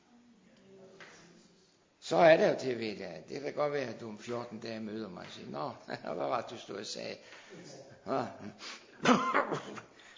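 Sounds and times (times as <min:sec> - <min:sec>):
speech: 0:02.1 - 0:09.9
person coughing: 0:09.0 - 0:09.8.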